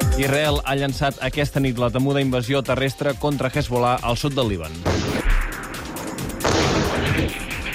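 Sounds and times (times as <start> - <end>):
speech: 0.2 - 5.1
artillery fire during a ground invasion in southern Lebanon: 4.8 - 7.7
heavy low boom: 4.8 - 7.7.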